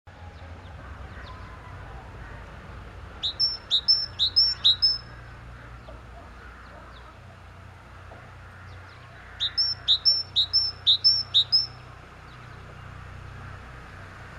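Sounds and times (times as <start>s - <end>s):
low steady rumble: 0.1s - 14.3s
great tit Parus major singing a bright two-note phrase: 3.1s - 13.5s.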